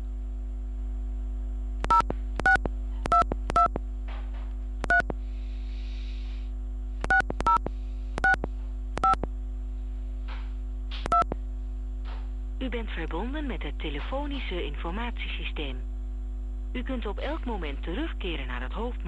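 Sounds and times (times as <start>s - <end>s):
steady low electrical hum: 0.0s - 19.0s
touch-tone beeps of a phone keypad dialing a mobile number: 1.9s - 3.7s, 7.1s - 7.6s, 9.0s - 9.2s
speech: 12.6s - 15.9s, 16.7s - 19.0s.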